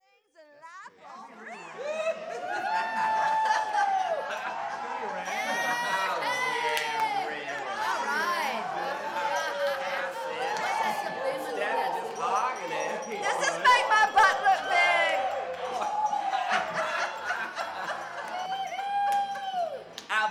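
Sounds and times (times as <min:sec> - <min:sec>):
laughter: 0:01.0 - 0:19.7
party music track: 0:05.2 - 0:18.8.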